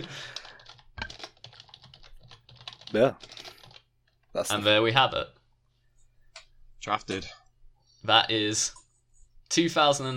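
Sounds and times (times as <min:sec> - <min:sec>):
speech: 0:00.0 - 0:00.4, 0:02.9 - 0:03.4, 0:04.4 - 0:05.4, 0:06.8 - 0:07.4, 0:08.0 - 0:08.8, 0:09.5 - 0:10.1
typing on a computer keyboard: 0:00.0 - 0:04.3.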